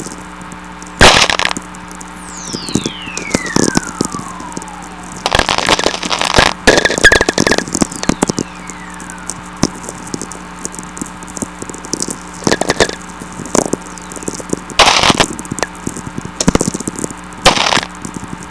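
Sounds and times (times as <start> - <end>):
natural VLF radio whistler: 1.0 - 11.1, 12.4 - 15.8, 17.4 - 18.0.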